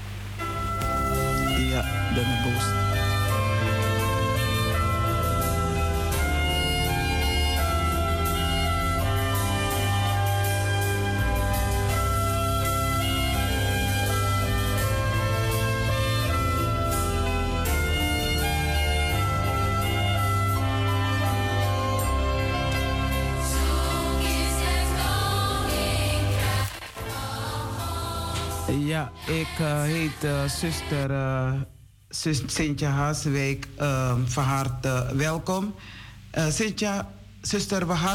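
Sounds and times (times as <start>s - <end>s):
radio music with sustained tones and a regular beat: 0.0s - 28.8s
speech: 1.8s - 2.9s, 29.5s - 38.1s.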